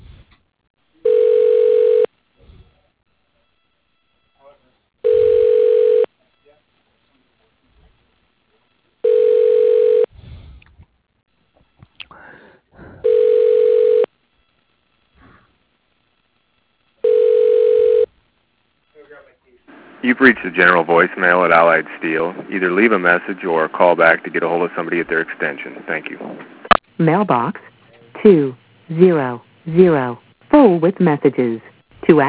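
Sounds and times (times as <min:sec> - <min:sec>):
telephone ringback tone of a call transferred to an operator: 0:01.0 - 0:02.1, 0:05.0 - 0:06.1, 0:09.0 - 0:10.1, 0:13.0 - 0:14.1, 0:17.0 - 0:18.1
speech: 0:20.1 - 0:32.2.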